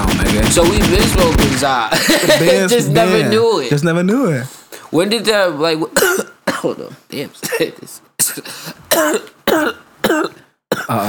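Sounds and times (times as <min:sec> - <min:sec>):
laughter: 0:00.0 - 0:03.4
speech: 0:00.5 - 0:11.0
harsh coughs: 0:06.0 - 0:06.8, 0:07.4 - 0:11.0.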